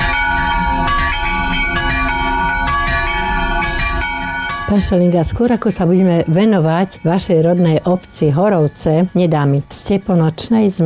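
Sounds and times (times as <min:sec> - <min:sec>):
church bells ringing: 0:00.0 - 0:10.8
speech: 0:04.7 - 0:10.8.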